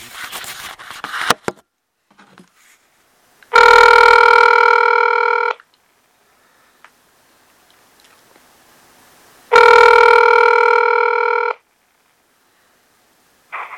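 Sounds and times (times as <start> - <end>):
outgoing phone call ringback tone buzzing: 3.5 - 5.6, 9.5 - 11.6.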